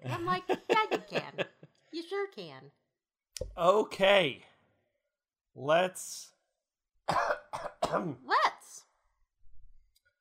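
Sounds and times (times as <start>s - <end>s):
laughter: 0.0s - 1.7s
speech: 0.2s - 0.6s, 3.4s - 4.5s, 5.6s - 6.3s, 7.1s - 8.5s
person with allergies coughing: 7.1s - 8.2s.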